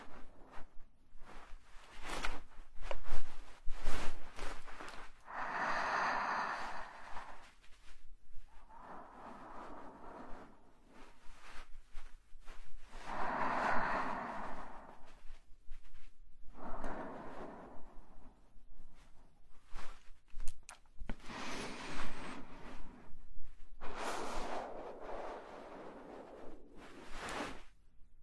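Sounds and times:
quiet low rumble: 0.0s - 28.2s
airy breathing: 5.2s - 7.7s, 8.5s - 11.3s, 12.9s - 15.4s, 16.4s - 19.1s, 21.2s - 23.1s, 23.8s - 27.6s.

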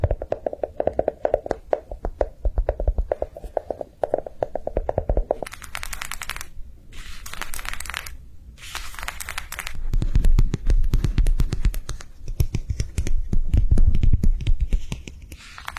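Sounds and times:
fingers tapping rapidly on squishy slow-rising toys: 0.0s - 6.4s, 9.9s - 15.4s.

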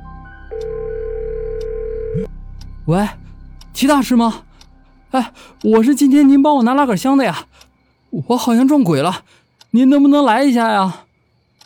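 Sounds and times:
low drone: 0.0s - 8.2s
telephone dial tone: 0.5s - 2.3s
speech: 2.2s - 4.5s, 5.1s - 11.0s.

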